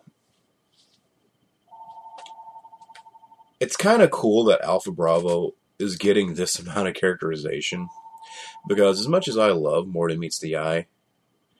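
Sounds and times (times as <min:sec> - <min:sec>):
electronic telephone ringing: 0:01.7 - 0:03.6, 0:07.9 - 0:08.9
speech: 0:03.6 - 0:08.0, 0:08.6 - 0:11.0.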